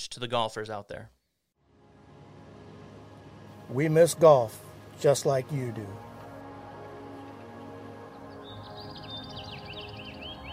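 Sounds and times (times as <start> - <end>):
speech: 0.1 - 1.2, 3.7 - 6.0
humming drone: 1.6 - 10.5
birds chirping at sunrise on a golf course: 3.7 - 10.5.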